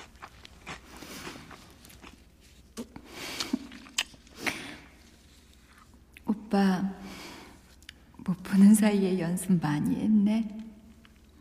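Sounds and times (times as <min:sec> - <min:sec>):
crunchy chewing of crispy fried sweet and sour pork: 0:00.0 - 0:06.2
speech: 0:06.5 - 0:07.0, 0:08.3 - 0:10.6.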